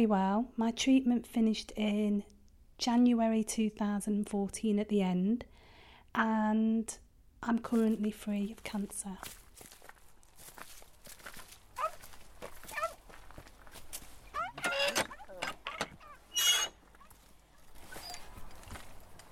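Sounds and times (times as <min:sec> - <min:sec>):
speech: 0:00.0 - 0:09.4
footsteps crunching outdoors while walking a dog: 0:07.7 - 0:19.3
scuffs and rustles: 0:07.7 - 0:19.3.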